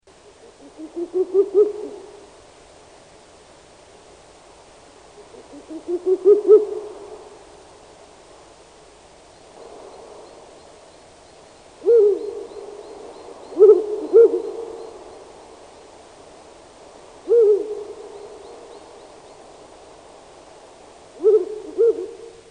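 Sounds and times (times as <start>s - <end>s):
Ural owl hooting: 0.2s - 2.4s, 5.2s - 7.4s, 9.6s - 15.9s, 17.2s - 19.8s, 21.1s - 22.4s.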